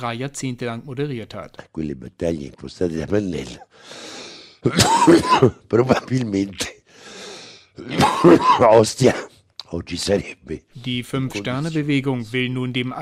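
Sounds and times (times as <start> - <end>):
speech: 0.0 - 6.7, 7.8 - 12.9
radio host's raspy wheezing gasps for breath: 3.7 - 4.6, 6.9 - 7.8
radio host coughing fit live on air: 4.6 - 6.8, 7.8 - 9.3.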